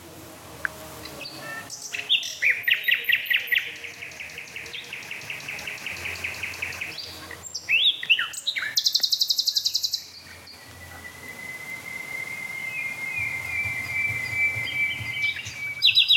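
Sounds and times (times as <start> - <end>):
two songbirds singing sobbing call motifs: 0.0 - 16.1.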